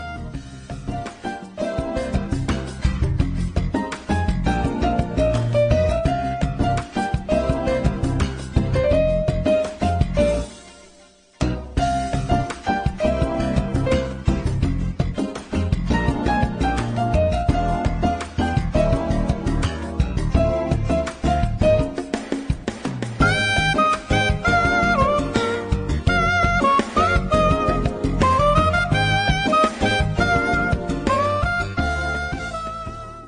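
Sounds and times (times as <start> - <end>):
jazz jam: 0.0 - 33.2.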